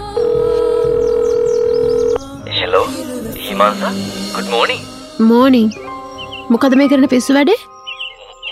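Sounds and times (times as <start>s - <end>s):
steady telephone dial tone while placing a call: 0.2s - 2.2s
speech: 3.6s - 5.8s, 6.5s - 7.7s.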